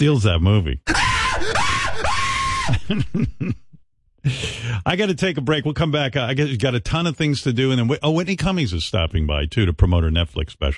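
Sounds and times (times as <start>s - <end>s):
speech: 0.0s - 1.6s, 2.7s - 3.6s, 4.2s - 10.7s
gasping yelps: 0.9s - 3.0s
person screaming: 0.9s - 3.1s
laughter: 1.4s - 4.6s.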